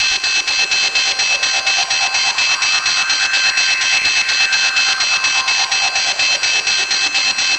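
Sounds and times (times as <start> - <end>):
machines running: 0.0 - 7.5.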